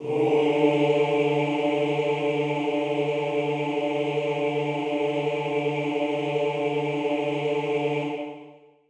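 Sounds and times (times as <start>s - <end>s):
male chorus singing D3: 0.0s - 8.7s.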